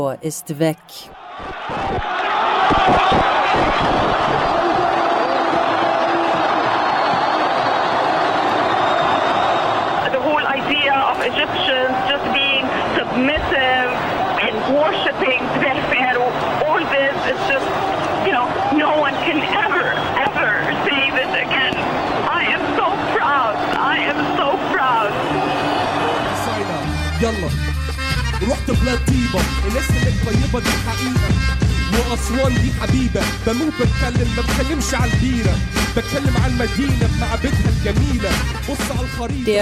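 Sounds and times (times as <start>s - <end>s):
speech: 0.0s - 4.4s, 28.4s - 39.6s
street crowd cheering and chanting: 0.7s - 39.6s
street crowd shouting: 1.1s - 27.2s.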